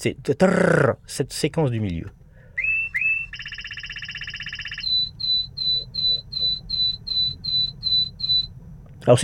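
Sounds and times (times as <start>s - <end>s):
speech: 0.0s - 2.2s, 9.0s - 9.2s
low rumble: 0.0s - 9.2s
canary singing: 2.6s - 8.5s.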